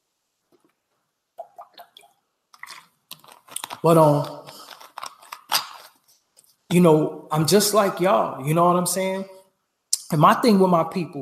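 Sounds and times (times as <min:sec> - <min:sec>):
wet sipping and slurping from a drink: 0:01.4 - 0:03.1
speech: 0:03.8 - 0:04.4, 0:06.7 - 0:09.4, 0:10.1 - 0:11.2.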